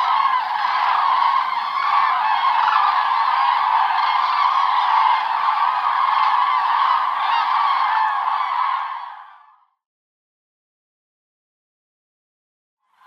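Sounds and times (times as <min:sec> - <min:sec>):
common crane calling: 0:00.0 - 0:09.4.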